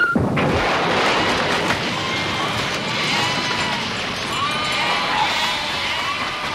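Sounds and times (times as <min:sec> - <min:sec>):
loud continuous rumble and clatter: 0:00.2 - 0:06.5
sheep bleating: 0:04.3 - 0:06.5.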